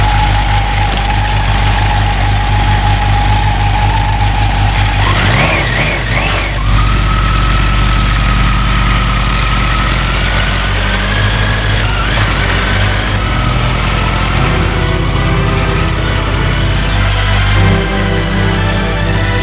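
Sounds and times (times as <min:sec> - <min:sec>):
car engine pulling away and driving out of town: 0:00.0 - 0:19.4
sustained whining tone: 0:00.0 - 0:19.4.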